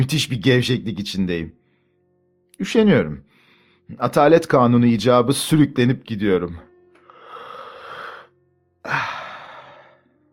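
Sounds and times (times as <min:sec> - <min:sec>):
speech: 0:00.0 - 0:01.6, 0:02.6 - 0:03.3, 0:03.9 - 0:06.7, 0:08.8 - 0:09.2
person yawning widely: 0:07.1 - 0:10.0.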